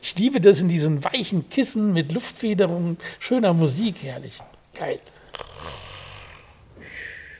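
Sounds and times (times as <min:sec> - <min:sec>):
speech: 0:00.1 - 0:05.8
person imitating snoring: 0:05.3 - 0:06.6.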